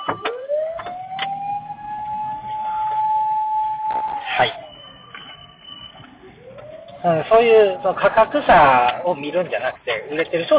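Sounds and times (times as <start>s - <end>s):
fire engine siren wailing as the fire engine passes by: 0.0s - 10.5s
speech: 7.0s - 10.5s.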